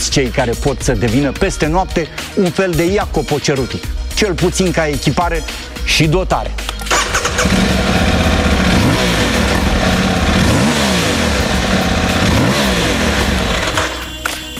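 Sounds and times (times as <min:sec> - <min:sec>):
speech: 0:00.0 - 0:08.0
Aprilia motorcycle engine revving: 0:06.9 - 0:14.2.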